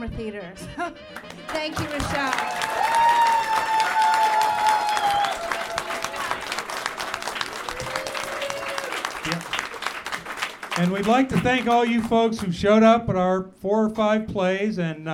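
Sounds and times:
speech: 0.0s - 3.8s, 10.8s - 15.1s
crowd applause: 1.2s - 12.5s
cheering: 1.5s - 11.1s
whistles: 2.8s - 5.8s.

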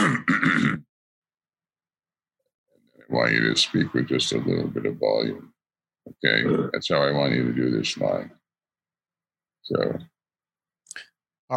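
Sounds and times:
person clearing throat with guttural rasps: 0.0s - 0.9s, 6.4s - 6.8s
speech: 3.1s - 5.6s, 6.2s - 8.4s, 9.6s - 10.1s.

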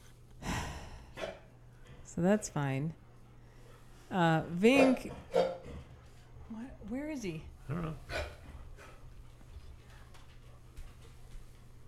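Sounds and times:
speech: 2.1s - 3.0s, 4.1s - 5.5s, 6.5s - 8.3s
dog barking: 4.7s - 5.7s.

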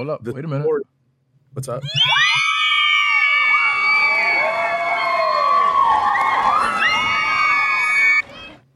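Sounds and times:
speech: 0.0s - 2.5s
loud crowd cheering and shouting with whoops: 1.9s - 8.6s.

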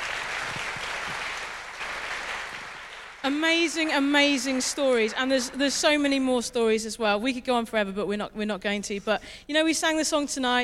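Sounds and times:
crowd clapping at a church service: 0.0s - 6.2s
speech: 3.2s - 10.6s.

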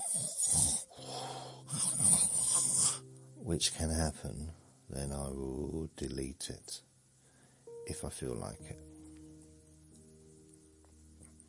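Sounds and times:
person imitating snoring: 0.0s - 3.0s
speech: 3.5s - 6.9s, 7.9s - 9.0s.

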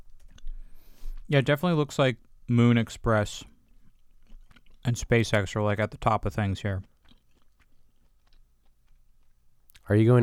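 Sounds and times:
chewing with soft moist crunching bites: 0.0s - 1.4s, 3.4s - 9.9s
speech: 1.3s - 3.5s, 4.8s - 6.9s, 9.9s - 10.2s.

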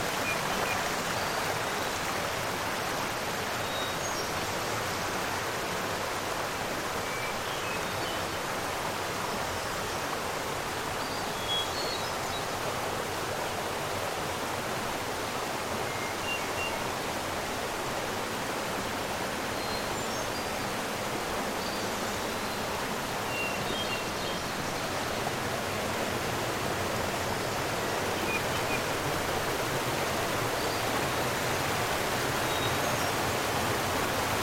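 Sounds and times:
mountain stream rushing over falls and pools: 0.0s - 34.4s.

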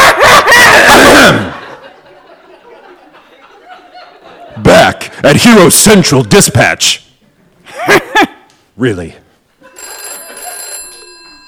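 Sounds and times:
laughter: 0.0s - 4.7s, 7.6s - 8.6s, 9.6s - 11.4s
speech: 5.3s - 7.0s, 7.8s - 9.2s
telephone ringing with a bright buzzy electronic trill: 9.6s - 11.4s.

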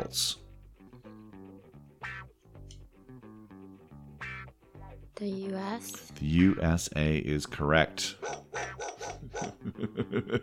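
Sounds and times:
speech: 0.1s - 0.4s, 5.2s - 8.4s, 9.4s - 10.4s
dog barking: 8.2s - 9.6s
laughter: 9.2s - 10.4s.

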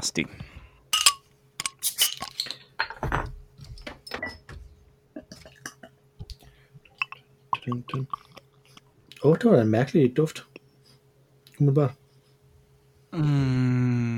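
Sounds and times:
speech: 0.1s - 0.5s, 7.7s - 8.2s, 9.2s - 10.5s, 11.6s - 12.0s, 13.1s - 14.0s
33-centilitre bottle of 6.5 percent beer opened: 1.0s - 2.5s
handling sounds: 1.0s - 2.5s
glass clinking: 1.0s - 2.6s, 7.0s - 8.3s.

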